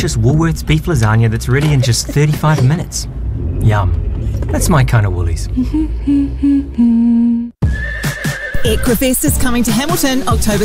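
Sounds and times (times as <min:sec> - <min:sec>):
speech: 0:00.0 - 0:07.4, 0:08.7 - 0:10.6
horse neighing: 0:07.6 - 0:08.9.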